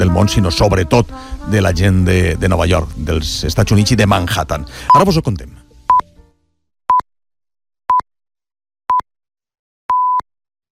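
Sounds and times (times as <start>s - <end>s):
speech: 0.0s - 5.6s
radio station hourly time signal pips: 9.9s - 10.2s.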